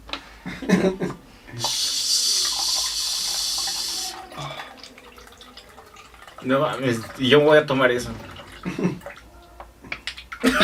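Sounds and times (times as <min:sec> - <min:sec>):
laughter: 0:00.5 - 0:01.2, 0:08.6 - 0:09.1, 0:10.4 - 0:10.6
speech: 0:00.6 - 0:01.7, 0:06.4 - 0:09.0
water pouring into liquid imitating someone urinating: 0:01.6 - 0:09.4.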